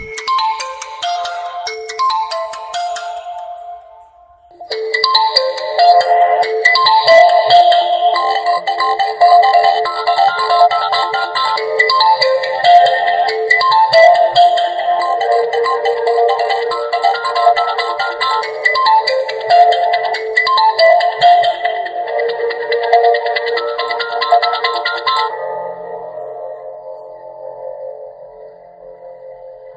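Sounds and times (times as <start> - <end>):
Oppo mobile phone ringtone: 0.0 - 3.9, 4.6 - 25.7.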